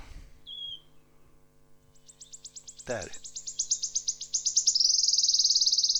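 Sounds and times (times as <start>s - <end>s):
wood warbler song with high notes and trill: 0.0s - 1.2s, 1.9s - 5.9s
low steady hum: 0.0s - 4.6s
speech: 2.9s - 3.4s.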